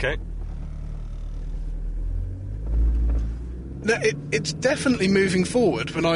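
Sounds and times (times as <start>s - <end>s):
speech: 0.0s - 0.3s, 3.8s - 6.1s
car engine rumbling and accelerating: 0.0s - 6.1s.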